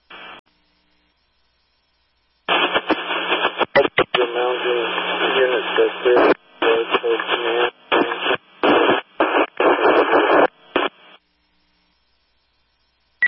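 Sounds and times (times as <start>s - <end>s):
garbled radio transmission with band-limited voice: 2.5s - 11.2s.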